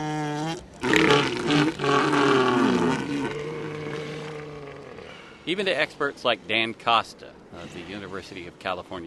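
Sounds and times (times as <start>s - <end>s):
elephant seal roaring at Año Nuevo State Park in Northern California: 0.0s - 5.4s
speech: 5.5s - 9.0s.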